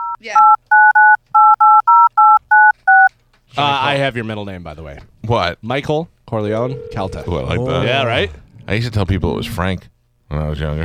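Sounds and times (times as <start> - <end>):
touch-tone phone dialing beeps: 0.0 - 3.1
speech: 3.8 - 10.8.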